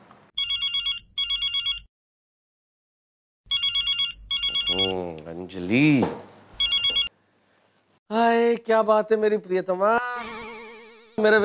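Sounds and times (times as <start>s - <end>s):
telephone ringing in a classic double-burst pattern as a call connects: 0.4s - 1.9s, 3.5s - 5.1s, 6.6s - 7.1s
speech: 4.7s - 6.3s, 8.1s - 10.0s, 11.2s - 11.4s.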